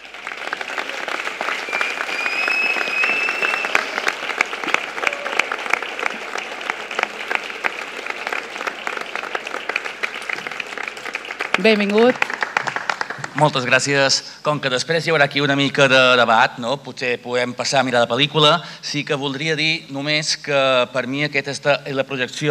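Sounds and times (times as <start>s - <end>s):
large audience applauding at a film screening: 0.0s - 13.9s
faint whistles from the audience: 1.5s - 4.2s
speech: 11.6s - 12.3s, 13.4s - 22.4s.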